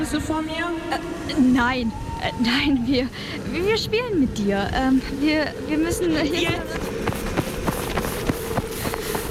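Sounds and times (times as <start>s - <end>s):
speech: 0.0s - 6.9s
low hum: 0.0s - 9.2s
footsteps of people running away on foot: 6.4s - 9.2s.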